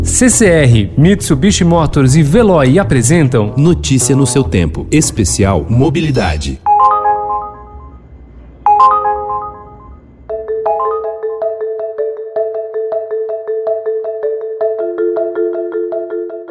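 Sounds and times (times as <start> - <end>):
speech: 0.1 - 6.7
ride-hailing app ride request alert repeating electronic melody: 6.7 - 8.0, 8.7 - 16.4
ride-hailing app ride request alert two bright chime strikes: 8.7 - 12.7.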